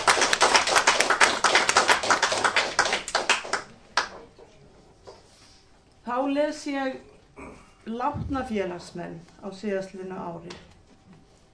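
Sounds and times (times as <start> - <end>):
group applauding to welcome new members at a members' meeting: 0.0 - 4.2
speech: 6.3 - 7.1, 7.9 - 10.7.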